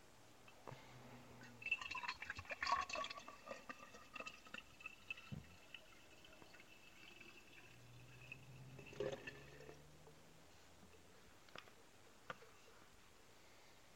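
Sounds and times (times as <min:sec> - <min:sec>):
water running into a canteen bottle: 0:01.5 - 0:10.1.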